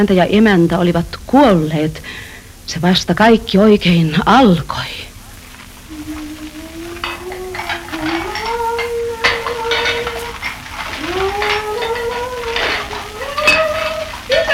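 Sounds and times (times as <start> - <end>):
speech: 0.0 - 5.1
pots and cutlery clattering while dishes are washed: 5.4 - 14.5.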